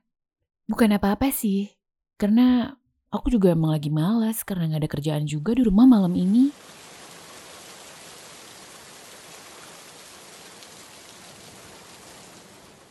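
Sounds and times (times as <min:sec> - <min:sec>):
speech: 0:00.7 - 0:06.8
heavy rain pouring: 0:06.2 - 0:12.8.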